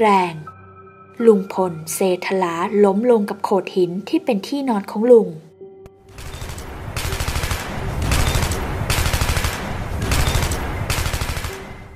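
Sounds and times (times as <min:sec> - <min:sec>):
speech: 0:00.0 - 0:00.4, 0:01.2 - 0:05.4
bursts of rapid gunfire from soldiers shooting at a rampaging tiger: 0:06.1 - 0:11.9.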